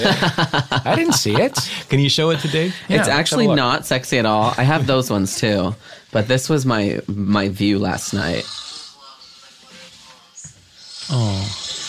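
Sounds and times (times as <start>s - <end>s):
laughter: 0.0s - 3.3s
speech: 0.0s - 8.6s, 11.1s - 11.6s
man's breathy inhale: 5.8s - 6.1s
man snoring loudly: 8.0s - 9.0s, 10.8s - 11.8s.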